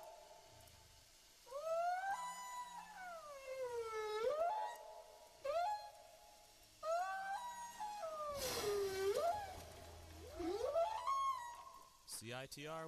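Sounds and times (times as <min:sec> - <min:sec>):
whale song moans and wails: 0:01.5 - 0:06.0, 0:06.8 - 0:11.9
speech: 0:12.4 - 0:12.8.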